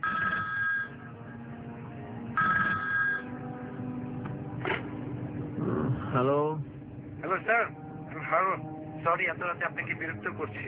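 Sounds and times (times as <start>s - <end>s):
telephone ringing at night: 0.0s - 1.1s, 2.4s - 3.4s
low steady background: 0.0s - 10.6s
speech: 6.2s - 10.6s.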